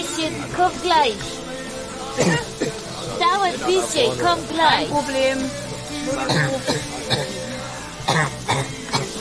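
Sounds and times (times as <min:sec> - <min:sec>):
speech: 0:00.2 - 0:01.4, 0:02.2 - 0:02.8, 0:03.5 - 0:07.5
person coughing harshly: 0:02.2 - 0:02.7, 0:06.2 - 0:07.4, 0:08.1 - 0:09.1.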